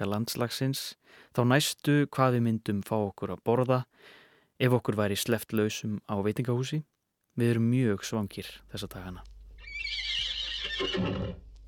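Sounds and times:
speech: 0.0s - 10.1s, 10.8s - 11.5s
lonely horse neighing: 9.6s - 11.5s.

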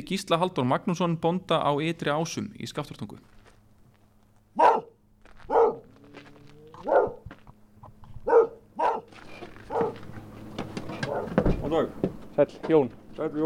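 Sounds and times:
speech: 0.0s - 3.4s, 12.4s - 13.4s
low steady hum: 0.0s - 13.4s
dog barking at a farm in Skaftártunga in Iceland: 4.6s - 6.0s, 6.8s - 7.3s, 8.2s - 10.1s, 11.0s - 11.4s.

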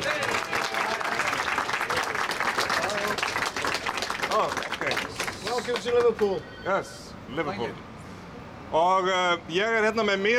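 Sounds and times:
crowd applauding at a Liverpool gathering welcoming a guest: 0.0s - 6.4s
speech: 5.7s - 7.9s, 8.7s - 10.3s.

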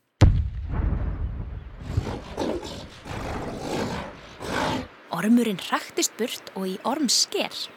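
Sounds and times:
loud cannon blast: 0.2s - 2.0s
long rumbling roar with rough crackling bursts: 0.7s - 4.9s
speech: 5.2s - 7.7s.

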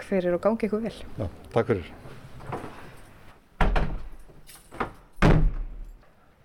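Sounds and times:
speech: 0.1s - 2.8s
engine house door slamming: 3.6s - 4.1s, 4.8s - 5.8s.

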